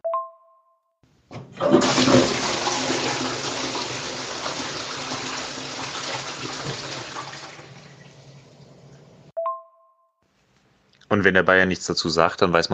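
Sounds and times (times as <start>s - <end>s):
toilet flushing: 1.3s - 9.3s
speech: 11.2s - 12.7s.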